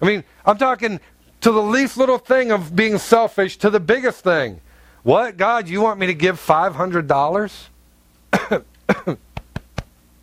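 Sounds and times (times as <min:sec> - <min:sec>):
speech: 0:00.0 - 0:07.7, 0:08.3 - 0:09.3
harsh coughs: 0:08.3 - 0:09.3.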